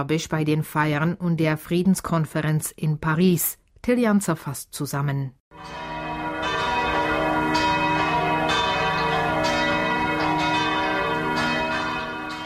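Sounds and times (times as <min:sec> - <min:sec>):
speech: 0:00.0 - 0:05.8
several church bells pealing: 0:05.5 - 0:12.4.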